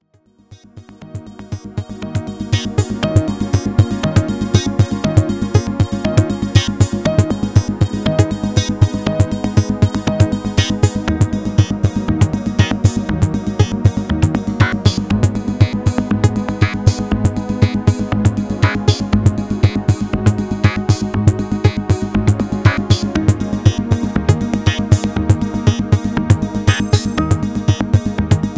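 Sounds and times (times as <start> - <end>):
Synthex synthesizer polymix combined: 0.0 - 28.5.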